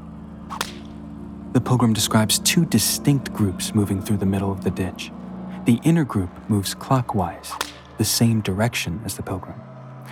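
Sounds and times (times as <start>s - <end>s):
low steady hum: 0.0s - 10.1s
swishing rush of air from a whip: 0.5s - 0.9s
whip crack: 0.5s - 1.0s, 7.5s - 8.0s
speech: 1.7s - 10.1s.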